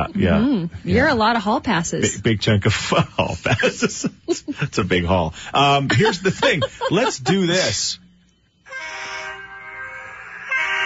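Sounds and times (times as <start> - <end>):
speech: 0.0 - 8.0
laughter: 2.9 - 5.0, 5.6 - 7.9
giant bus air horns sounding a chord-like blast: 8.7 - 10.8.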